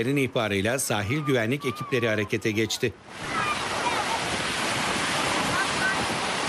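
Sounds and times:
speech: 0.0s - 3.6s
giant waves crashing on a rough sea at the coast of Vize Kırklareli Turkey: 1.0s - 6.4s
wind noise at the coast: 3.0s - 6.4s.

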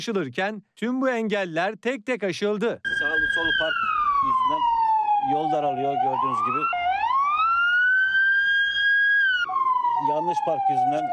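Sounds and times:
speech: 0.0s - 6.8s, 10.0s - 11.1s
ambulance siren wailing on a street narrowed by parked cars: 2.8s - 11.1s.

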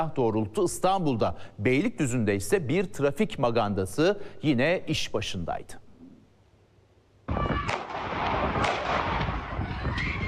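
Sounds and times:
speech: 0.0s - 5.8s
gunshots fired at a crowd in a street: 7.3s - 9.6s.

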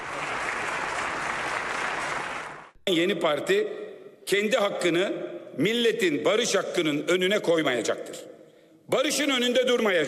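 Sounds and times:
applause of many hands in parliament: 0.0s - 2.8s
speech: 2.9s - 8.3s, 8.9s - 10.0s.

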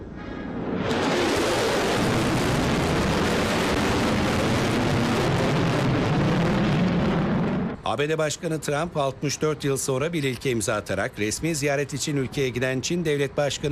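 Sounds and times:
B-1 bomber jets flying overhead: 0.0s - 7.8s
speech: 7.9s - 13.6s.

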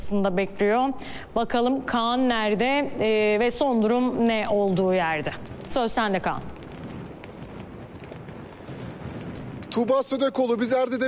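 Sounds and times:
speech: 0.0s - 6.6s, 9.8s - 11.0s
strong wind at the seaside at Sarayburnu in Istanbul: 2.7s - 10.6s
rain at the seaside at Sarayburnu in Istanbul: 2.7s - 11.0s.

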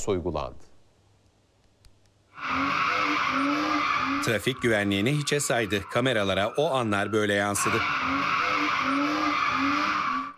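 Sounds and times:
speech: 0.0s - 0.7s, 2.5s - 9.9s
car tires skidding while drifting on a public road: 2.4s - 10.3s.

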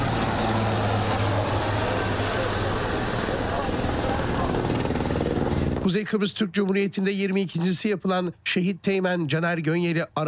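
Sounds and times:
helicopter flying during a search and rescue exercise: 0.0s - 6.0s
speech: 5.9s - 10.2s.

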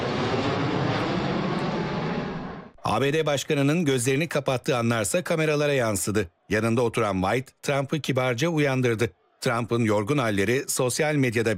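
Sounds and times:
flyover of twelve jet aircraft at a large sporting event: 0.0s - 2.8s
speech: 2.9s - 11.5s.

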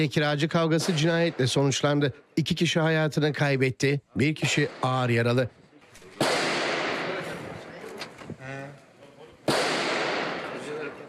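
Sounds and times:
speech: 0.0s - 5.6s
gunshots echoing at a home in Maltepe Istanbul: 0.6s - 2.1s, 4.4s - 7.8s, 9.4s - 11.0s.

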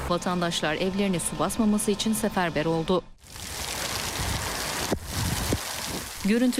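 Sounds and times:
speech: 0.1s - 3.1s, 6.3s - 6.5s
heavy rain pouring during a sudden city downpour in Aksaray: 3.2s - 6.5s.

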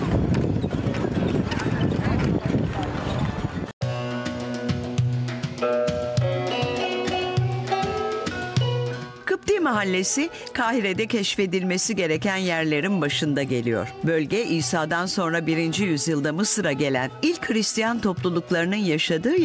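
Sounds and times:
horse-drawn carriage hooves clip-clopping in Cairo: 0.0s - 3.7s
busy street noise: 0.0s - 19.4s
layered music-like tones: 3.8s - 19.4s
speech: 9.8s - 19.4s.

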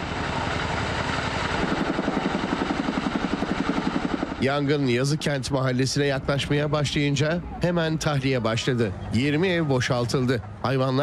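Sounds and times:
CH-47 Chinook helicopter rotor dropping water on a wildfire: 0.1s - 4.4s
speech: 4.4s - 11.0s.

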